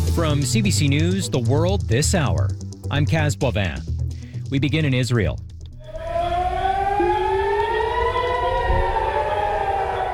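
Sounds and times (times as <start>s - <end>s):
speech: 0.2s - 3.9s, 4.5s - 5.5s
air raid sirens wailing over a city: 5.8s - 10.1s.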